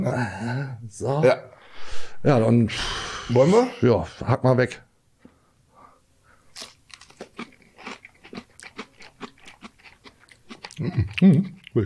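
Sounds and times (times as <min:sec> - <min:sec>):
speech: 0:00.0 - 0:04.8, 0:10.8 - 0:11.8
brittle crunchy food being bitten and chewed: 0:06.5 - 0:11.8.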